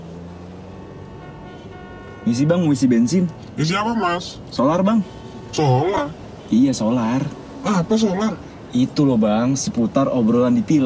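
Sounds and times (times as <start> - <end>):
dense rumble of car engines in traffic: 0.0 - 10.8
car horns honking in traffic jam: 0.6 - 8.4
speech: 2.2 - 10.8.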